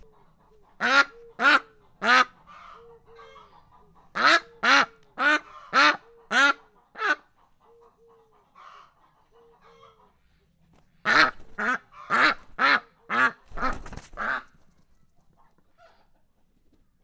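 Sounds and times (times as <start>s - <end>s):
domestic duck fleeing on a farmyard: 0.0s - 7.5s, 11.0s - 14.6s.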